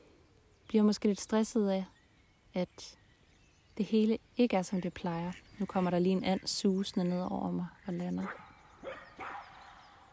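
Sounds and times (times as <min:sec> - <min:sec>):
steady outdoor hiss: 0:00.0 - 0:10.1
speech: 0:00.7 - 0:02.0, 0:02.6 - 0:03.0, 0:03.8 - 0:08.5
dog barking: 0:08.2 - 0:09.6.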